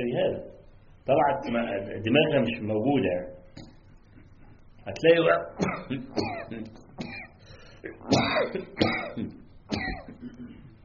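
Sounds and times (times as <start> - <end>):
speech: 0.0 - 3.7, 4.8 - 6.8
man coughing harshly during a religious sermon: 5.6 - 10.8.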